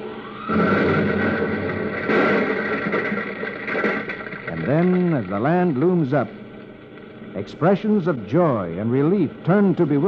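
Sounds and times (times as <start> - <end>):
braking rockets firing on a spacecraft descending toward Earth: 0.0 - 7.8
speech: 0.5 - 0.7, 4.7 - 6.4, 7.4 - 10.0.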